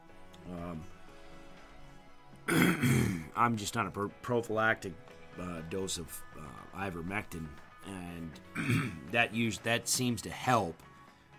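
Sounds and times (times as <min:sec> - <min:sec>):
loud harsh cough: 0:02.5 - 0:03.3, 0:08.6 - 0:09.1
throat clearing: 0:02.5 - 0:03.3, 0:08.6 - 0:09.1
speech: 0:02.8 - 0:10.9.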